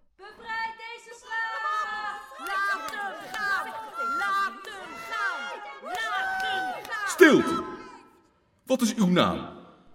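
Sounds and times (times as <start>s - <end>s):
arena audience shouting and clamoring: 0.2s - 8.2s
speech: 7.2s - 7.7s, 8.7s - 9.9s.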